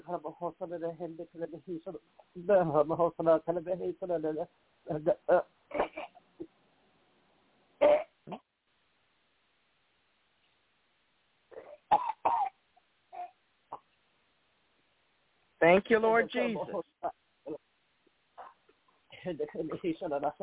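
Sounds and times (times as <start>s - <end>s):
speech: 0.1s - 6.2s, 7.8s - 8.5s, 15.6s - 17.6s, 19.2s - 20.4s
person coughing harshly: 5.7s - 6.2s, 11.6s - 12.6s
throat clearing: 5.7s - 6.2s.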